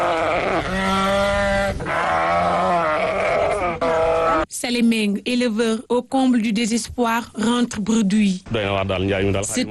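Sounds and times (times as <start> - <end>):
other animals at a livestock market: 0.0 - 4.5
several sheep bleating at a livestock market: 0.0 - 4.5
speech: 4.6 - 9.6.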